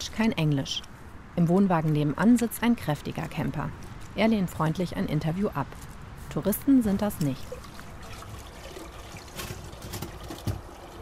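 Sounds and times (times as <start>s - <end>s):
speech: 0.2s - 7.7s
running water from outdoor washbasins in front of a campsite sanitary building: 7.4s - 11.0s.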